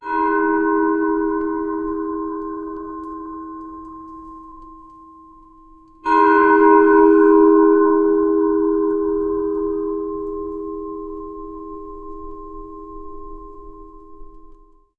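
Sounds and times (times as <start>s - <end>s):
church bells: 0.0s - 14.9s.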